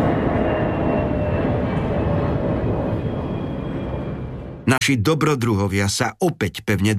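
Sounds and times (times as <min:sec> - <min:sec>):
airplane engine roar as the plane tilts: 0:00.0 - 0:04.7
speech: 0:04.7 - 0:06.9.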